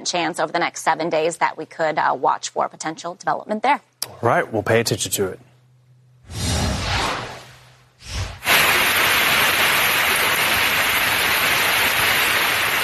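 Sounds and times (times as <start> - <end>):
speech: 0.0 - 5.5
brief rumbling whooshes: 6.2 - 8.4
heavy rain pouring down in Brick New Jersey: 8.5 - 12.8.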